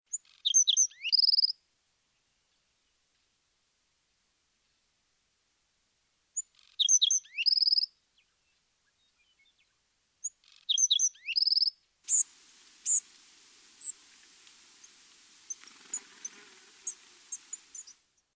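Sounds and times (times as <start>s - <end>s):
Back throated Sparrow: 0.1s - 1.6s, 6.4s - 18.0s.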